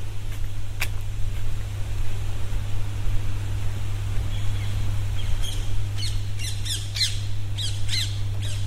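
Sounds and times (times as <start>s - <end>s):
steady low hum: 0.0s - 8.6s
wash of outdoor noise: 0.0s - 8.6s
birds squawking while flying overhead: 4.2s - 8.6s.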